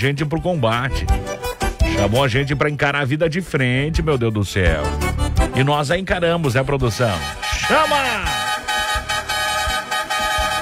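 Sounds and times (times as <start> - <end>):
speech: 0.0 - 1.4, 2.0 - 8.4
vehicle horn honking: 7.0 - 10.6.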